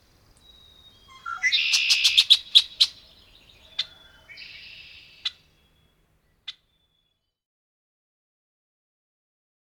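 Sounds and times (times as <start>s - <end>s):
red-winged blackbird song: 0.3s - 7.3s.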